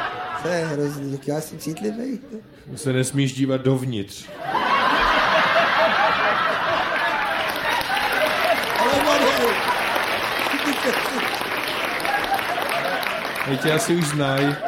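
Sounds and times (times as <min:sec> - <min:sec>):
audience chuckling and laughing: 0:00.0 - 0:02.4, 0:04.3 - 0:14.6
speech: 0:00.4 - 0:04.7, 0:10.8 - 0:11.4, 0:13.5 - 0:14.6
audience clapping: 0:05.8 - 0:14.6.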